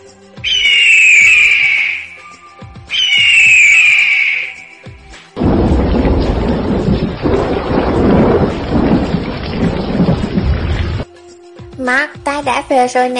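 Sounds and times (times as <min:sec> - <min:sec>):
shrill descending hawk cries: 0:00.4 - 0:02.3, 0:02.9 - 0:04.8
rain-like hiss: 0:04.2 - 0:11.0
rolling thunder crash of a storm: 0:05.4 - 0:11.0
speech: 0:12.7 - 0:13.1.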